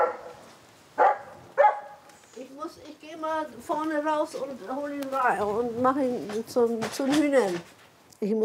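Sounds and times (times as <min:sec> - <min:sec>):
dog barking: 0:00.0 - 0:00.4, 0:01.0 - 0:02.0
speech: 0:02.6 - 0:08.4.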